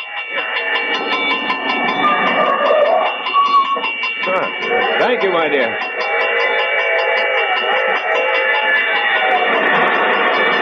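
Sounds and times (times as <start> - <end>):
approaching train rumbling: 0.0 - 10.5
rapid regular clanging bell: 0.0 - 10.5
speech: 4.8 - 5.9.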